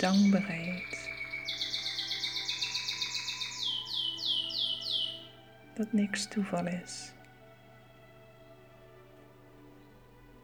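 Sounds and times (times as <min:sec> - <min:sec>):
speech: 0:00.0 - 0:01.6, 0:05.8 - 0:07.2
small bird whistling: 0:00.0 - 0:05.4.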